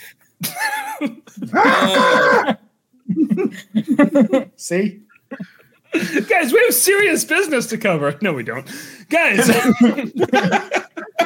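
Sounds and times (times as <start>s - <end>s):
speech: 0.1s - 2.6s, 3.2s - 11.0s
laughter: 0.4s - 4.6s, 5.2s - 6.7s, 9.2s - 11.2s
baby goat bleating: 1.6s - 2.5s.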